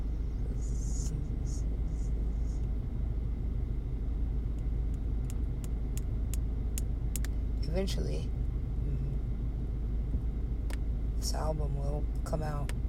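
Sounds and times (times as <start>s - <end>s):
car engine idling: 0.0s - 12.8s
light ticking clicks: 4.5s - 7.4s
speech: 7.8s - 8.4s, 11.3s - 12.8s.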